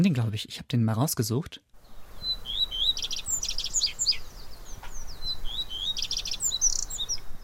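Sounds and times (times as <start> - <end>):
speech: 0.0 - 1.7
soft steady outdoor hiss: 0.0 - 7.4
common redstart singing: 1.8 - 7.4.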